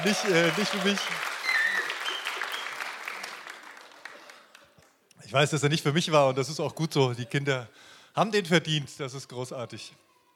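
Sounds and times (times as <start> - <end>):
speech: 0.0 - 1.3, 5.3 - 10.0
faint voices or cheers: 0.0 - 2.7
audience applause: 0.0 - 4.9.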